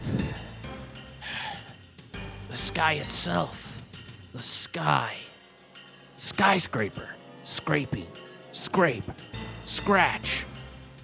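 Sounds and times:
heavy breathy panting: 1.2s - 1.8s
speech: 2.6s - 3.7s, 4.4s - 5.3s, 6.2s - 10.5s.

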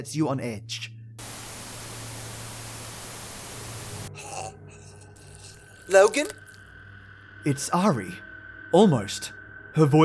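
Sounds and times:
speech: 0.0s - 0.9s, 5.9s - 6.4s, 7.4s - 10.0s
loud radio static hiss: 1.2s - 4.1s.

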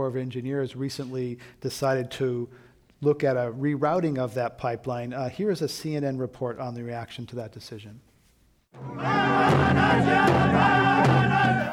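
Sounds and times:
speech: 0.0s - 8.1s, 8.7s - 11.7s
drumbeats at a protest camp: 8.8s - 11.7s
large crowd cheering and shouting at a protest camp: 8.8s - 11.7s.

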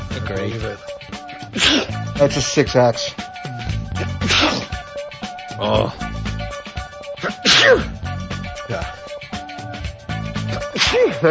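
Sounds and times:
speech: 0.3s - 0.9s, 1.5s - 3.2s, 5.6s - 6.1s, 7.2s - 8.0s, 8.7s - 9.0s, 10.9s - 11.2s
breathy catches and snorts of a sneezing fit: 1.5s - 2.0s, 4.0s - 4.8s, 7.2s - 8.0s, 10.4s - 11.2s
person sneezing: 1.6s - 2.0s, 4.0s - 4.8s, 7.2s - 8.0s, 10.5s - 11.2s.

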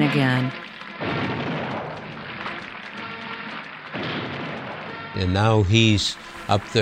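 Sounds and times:
speech: 0.1s - 1.1s, 5.2s - 6.8s
cannon booms of a 21-gun salute at a presidential inauguration: 0.6s - 5.4s.

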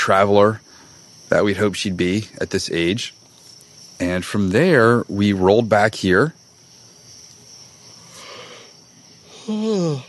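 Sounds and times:
speech: 0.0s - 0.6s, 1.3s - 3.2s, 4.0s - 6.4s
person yawning: 9.3s - 10.0s.

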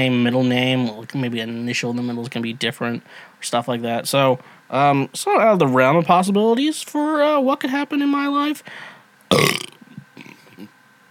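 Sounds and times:
speech: 0.0s - 9.7s
loud raspy burp: 9.3s - 10.4s.

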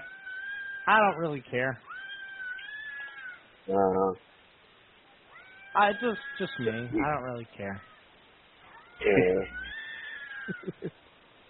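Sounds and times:
cat meowing and caterwauling: 0.0s - 0.9s, 1.9s - 3.4s, 5.3s - 6.9s, 8.7s - 10.8s
speech: 0.8s - 1.9s, 3.7s - 4.3s, 5.8s - 7.9s, 9.0s - 9.6s, 10.5s - 11.0s
cat grumbling: 9.0s - 9.8s.

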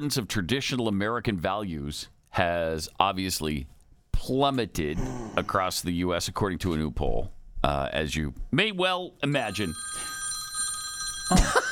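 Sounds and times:
speech: 0.0s - 10.2s
cell phone ringing with a high electronic tone: 9.4s - 11.7s.

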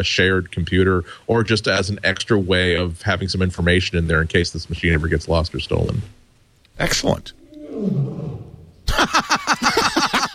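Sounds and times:
speech: 0.0s - 6.2s, 6.8s - 9.8s
lion roaring: 6.8s - 8.9s
laughter: 8.8s - 10.3s.

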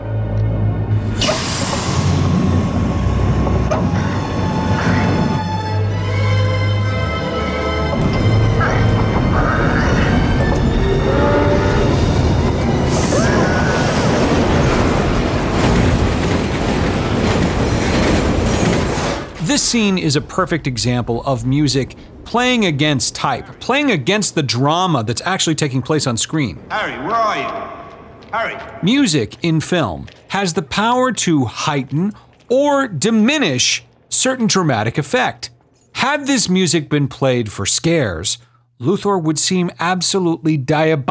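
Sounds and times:
oncoming subway train roaring by: 0.0s - 24.0s
shrill metallic squealing and screeching of subway train: 0.9s - 15.6s
speech: 19.6s - 41.0s.

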